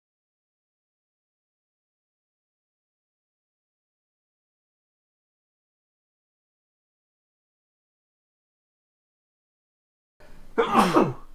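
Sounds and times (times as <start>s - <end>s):
person sneezing: 10.6s - 11.3s.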